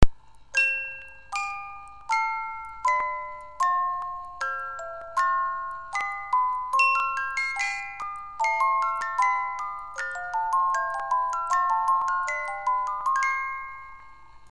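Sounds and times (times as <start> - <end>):
Swiss 18-note paperweight music box melody: 0.0 - 14.5.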